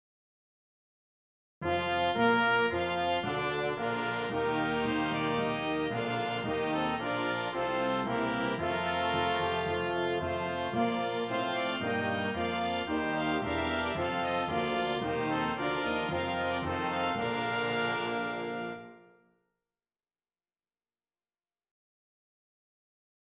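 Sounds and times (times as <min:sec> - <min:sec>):
brass: 0:01.6 - 0:19.4.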